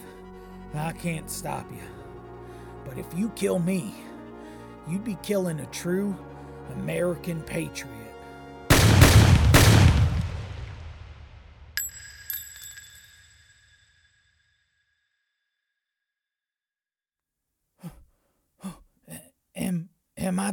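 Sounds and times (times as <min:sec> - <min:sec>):
speech: 0:00.7 - 0:02.0, 0:02.8 - 0:04.1, 0:04.8 - 0:08.0, 0:20.3 - 0:20.5
gunshots: 0:08.7 - 0:11.8
bright metallic pings: 0:11.8 - 0:14.2.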